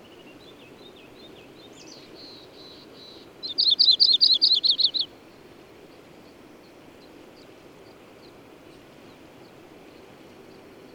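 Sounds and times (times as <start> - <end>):
bird singing a rapid trill of high slurred notes: 0.0 - 5.1.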